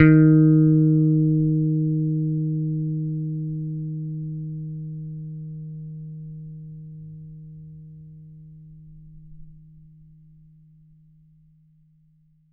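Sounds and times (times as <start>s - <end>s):
picked bass guitar note D sharp three: 0.0s - 6.8s.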